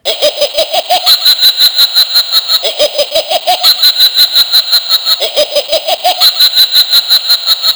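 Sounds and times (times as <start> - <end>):
witch laughing: 0.0 - 7.7.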